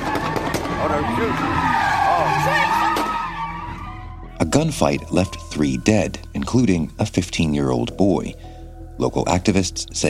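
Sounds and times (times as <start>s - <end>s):
sports car tires squealing while spinning donuts: 0.0s - 4.3s
speech: 0.8s - 3.0s, 4.4s - 10.0s.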